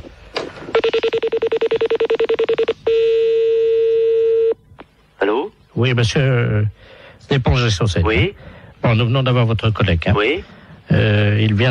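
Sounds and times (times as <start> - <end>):
telephone dialing beeps: 0.8 - 4.6
speech: 5.8 - 11.6.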